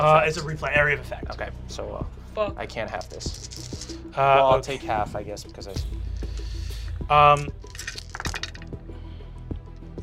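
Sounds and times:
speech: 0.0s - 6.4s, 7.1s - 7.7s
many dice being rolled and clinking: 3.0s - 4.0s, 7.4s - 8.7s.

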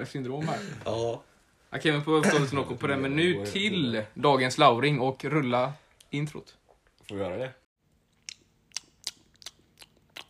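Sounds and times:
speech: 0.0s - 7.6s
M&M candy being chewed: 8.0s - 10.2s.

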